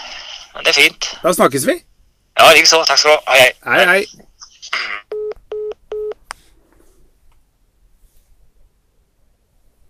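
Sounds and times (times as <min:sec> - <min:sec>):
faint low hiss: 0:00.0 - 0:09.8
speech: 0:00.6 - 0:04.9
telephone keypad dialing beeps: 0:05.1 - 0:06.2.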